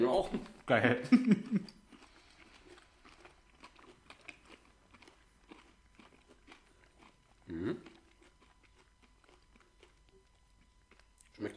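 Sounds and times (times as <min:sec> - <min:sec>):
speech: 0:00.0 - 0:01.8, 0:11.4 - 0:11.5
laughter: 0:00.9 - 0:01.7
biting and chewing a chocolate bar with pretzel pieces: 0:01.4 - 0:11.5
mouth sounds: 0:07.4 - 0:08.0.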